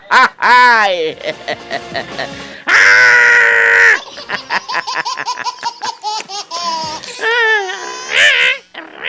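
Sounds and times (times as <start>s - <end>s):
laughter: 0.0s - 2.4s, 3.7s - 7.8s
speech: 0.1s - 2.7s, 4.3s - 8.6s
man screeching and squawking imitating a wounded macaw: 2.7s - 4.0s, 6.6s - 9.0s.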